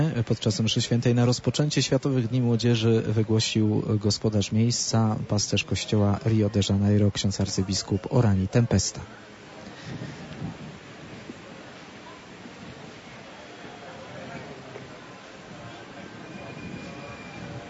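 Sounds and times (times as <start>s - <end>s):
speech: 0.0s - 9.3s
faint indistinct voices of young people murmuring: 0.0s - 17.6s
strong ocean wind blowing on Copacabana beach in Rio de Janeiro: 9.7s - 11.4s.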